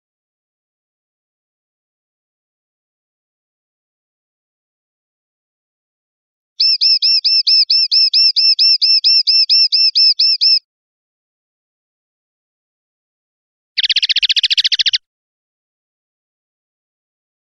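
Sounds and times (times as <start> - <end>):
European goldfinch song: 6.6 - 10.6, 13.8 - 15.0.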